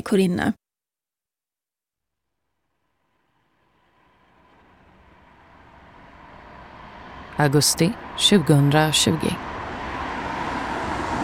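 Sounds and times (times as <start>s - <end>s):
speech: 0.0s - 0.6s, 7.4s - 9.6s
low road hum: 2.4s - 11.2s
car engine rumbling as the vehicle comes to a halt: 2.7s - 11.2s.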